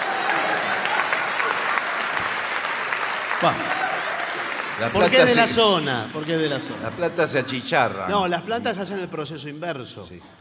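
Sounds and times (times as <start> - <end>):
audience applause: 0.0 - 7.5
speech: 3.4 - 3.8, 4.8 - 10.3.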